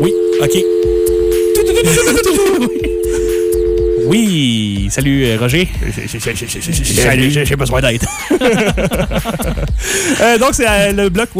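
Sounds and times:
speech: 0.0s - 0.8s, 1.8s - 3.0s, 4.1s - 11.3s
telephone sound effect dial tone: 0.0s - 4.1s
laughter: 1.6s - 3.3s, 5.6s - 7.3s, 7.9s - 10.5s.

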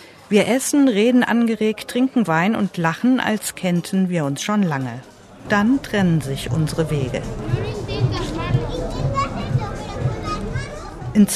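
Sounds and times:
speech: 0.3s - 7.6s, 11.2s - 11.3s
steady low beat: 4.8s - 11.3s
children playing between restaurant tables in harbour lanes at night: 7.2s - 11.2s.

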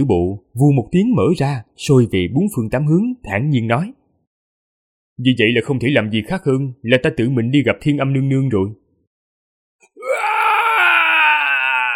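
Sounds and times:
speech: 0.0s - 4.0s, 5.2s - 8.8s
agonized scream: 9.8s - 11.9s.

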